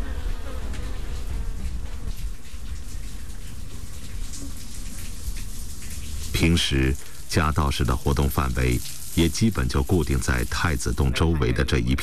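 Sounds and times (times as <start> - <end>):
swarm of honeybees buzzing in and out of cupboard: 0.0 - 2.1
speech: 6.4 - 12.0.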